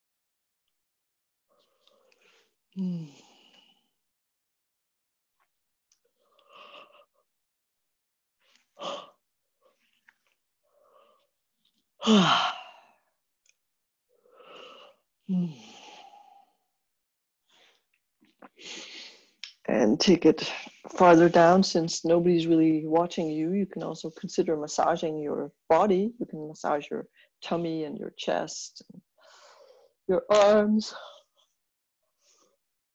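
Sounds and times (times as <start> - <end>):
speech: 2.8 - 3.2, 12.0 - 12.6, 19.8 - 29.1, 30.1 - 31.2
person yawning: 12.0 - 12.7.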